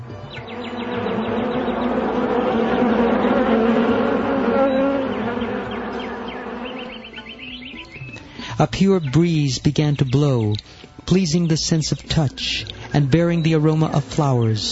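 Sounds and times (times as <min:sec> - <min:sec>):
dense swarm of bees buzzing: 0:00.0 - 0:07.8
speech: 0:08.6 - 0:14.7.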